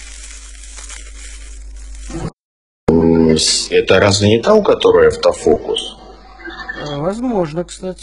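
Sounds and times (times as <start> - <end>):
plastic packaging bag crinkling while being handled and opened: 0.0 - 2.3
speech: 2.9 - 6.0, 6.8 - 8.0.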